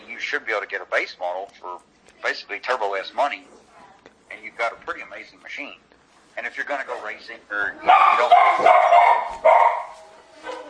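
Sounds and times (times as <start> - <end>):
speech: 0.2 - 3.6, 4.3 - 9.8
dog barking: 7.8 - 10.6.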